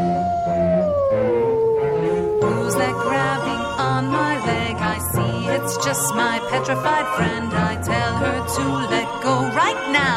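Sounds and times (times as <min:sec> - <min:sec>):
long sustained howl through corn maze stalks on Halloween: 0:00.0 - 0:04.7
speech: 0:05.7 - 0:10.1.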